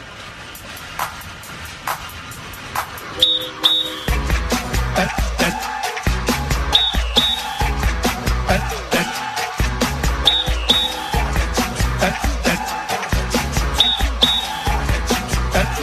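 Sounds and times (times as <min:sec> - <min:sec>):
deep rumbling beat: 0:00.9 - 0:15.8
noisy crowd-like background: 0:02.9 - 0:15.8
short shrill whistle blasts: 0:03.1 - 0:04.4, 0:06.5 - 0:07.9, 0:10.1 - 0:11.4, 0:13.6 - 0:14.9.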